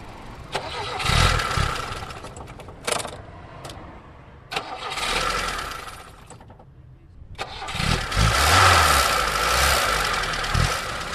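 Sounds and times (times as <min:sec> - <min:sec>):
cold engine of vintage Lada car cranking and revving in Hialeah Florida: 0:00.0 - 0:02.5, 0:04.5 - 0:06.2, 0:07.4 - 0:11.1.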